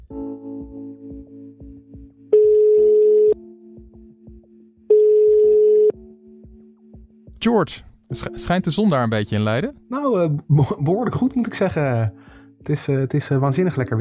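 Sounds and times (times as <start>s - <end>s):
ringing tone beeps of an outgoing phone call: 2.3s - 3.5s, 4.9s - 6.0s
speech: 7.4s - 13.9s.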